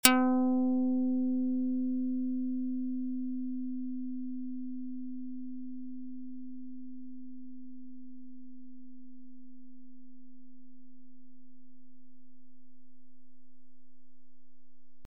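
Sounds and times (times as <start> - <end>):
Karplus Strong plucked string synth tone: 0.0 - 10.0.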